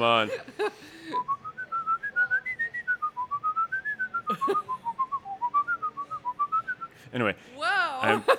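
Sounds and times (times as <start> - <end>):
speech: 0.0 - 1.0, 4.5 - 4.7, 7.1 - 8.3
person whistling a flowing melody: 1.2 - 7.0
laughter: 4.3 - 4.9, 8.0 - 8.3.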